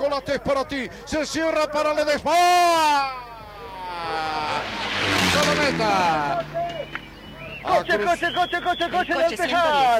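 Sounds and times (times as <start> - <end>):
speech: 0.1 - 3.2, 5.4 - 6.6, 7.6 - 9.9
rally car engine racing toward the finish line in light rain: 3.7 - 9.9.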